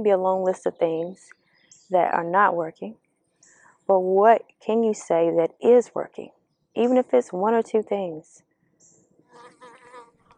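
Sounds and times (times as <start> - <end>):
speech: 0.0 - 3.0, 3.9 - 8.5
bee buzzing: 9.2 - 10.3.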